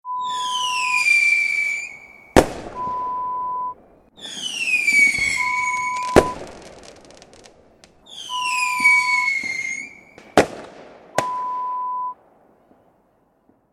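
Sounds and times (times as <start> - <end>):
rocket: 0.3 - 12.2.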